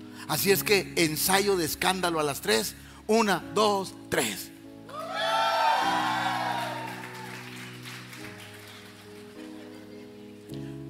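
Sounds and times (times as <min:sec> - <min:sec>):
speech: 0:00.3 - 0:04.5
large audience shouting and whooping: 0:04.9 - 0:07.4
large audience clapping: 0:05.0 - 0:09.9.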